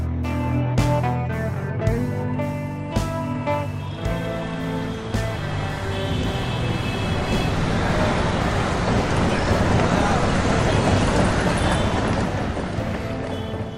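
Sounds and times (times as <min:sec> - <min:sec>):
dense city street traffic: 0:00.0 - 0:13.7.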